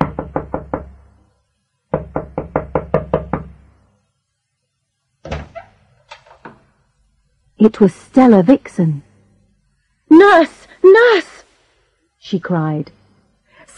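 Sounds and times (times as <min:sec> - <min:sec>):
rapid insistent knocking on a wooden door: 0:00.0 - 0:01.0, 0:01.9 - 0:03.6
speech: 0:07.6 - 0:09.1, 0:10.2 - 0:11.3, 0:12.3 - 0:13.0.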